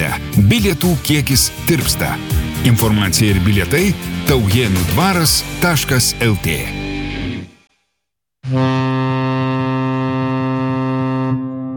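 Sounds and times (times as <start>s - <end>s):
speech: 0.5s - 6.8s
large river excursion steamer horn on the Nemunas loops at Birštonas: 8.4s - 11.7s.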